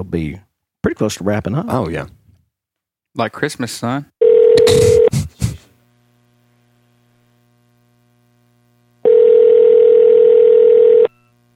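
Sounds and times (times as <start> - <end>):
speech: 0.0 - 2.2, 3.2 - 5.2
phone line ringback tones on an outgoing call: 4.2 - 5.1, 9.0 - 11.3.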